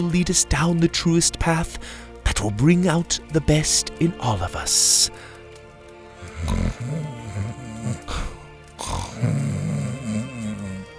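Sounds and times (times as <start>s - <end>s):
speech: 0.0s - 5.3s, 6.4s - 7.2s
person snoring: 6.1s - 10.9s.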